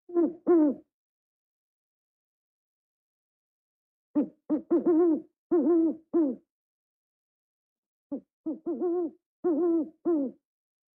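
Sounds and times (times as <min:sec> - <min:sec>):
owl hooting: 0:00.1 - 0:00.8, 0:04.2 - 0:06.4, 0:08.1 - 0:10.4
speech: 0:05.6 - 0:06.4, 0:08.1 - 0:10.4.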